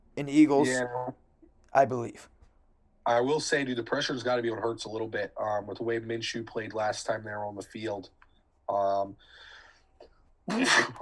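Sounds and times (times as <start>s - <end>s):
speech: 0.2s - 1.2s, 1.8s - 2.4s, 3.1s - 9.5s, 10.5s - 11.0s
person sneezing: 10.5s - 11.0s.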